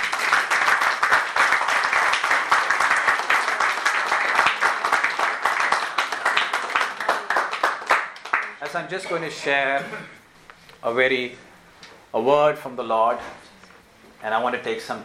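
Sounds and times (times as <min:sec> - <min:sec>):
large crowd applauding: 0:00.0 - 0:08.8
speech: 0:08.7 - 0:10.2, 0:10.8 - 0:11.5, 0:12.1 - 0:13.4, 0:14.2 - 0:15.0.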